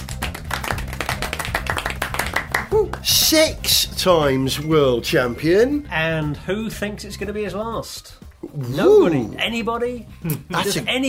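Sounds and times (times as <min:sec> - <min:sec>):
small group clapping: 0:00.0 - 0:03.4
speech: 0:03.0 - 0:11.0
vocal exclamation: 0:08.4 - 0:09.4.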